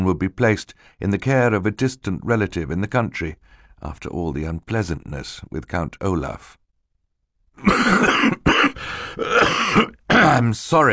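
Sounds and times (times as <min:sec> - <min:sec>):
speech: 0:00.0 - 0:06.6, 0:07.6 - 0:08.5, 0:09.2 - 0:10.9
harsh raspy coughing: 0:07.6 - 0:10.5.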